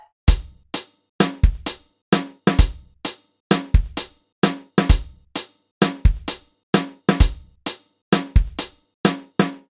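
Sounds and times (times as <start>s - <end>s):
drums: 0.3s - 9.6s.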